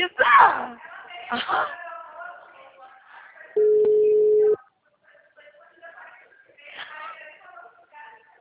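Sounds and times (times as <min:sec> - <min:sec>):
person talking: 0:00.0 - 0:01.8
ringback tones of an outgoing telephone call: 0:03.6 - 0:04.6.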